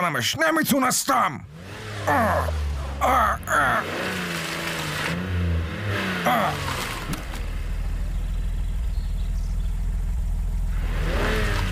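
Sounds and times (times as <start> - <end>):
speech: 0.0 - 4.4, 6.2 - 6.7
stuck car's engine revving and straining: 1.4 - 11.7
people gasping and groaning: 2.0 - 4.0, 6.2 - 6.7.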